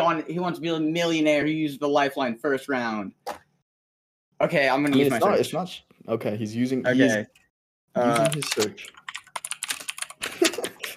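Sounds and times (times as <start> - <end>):
speech: 0.1 - 3.4, 4.4 - 9.0
computer keyboard typing: 8.0 - 10.9.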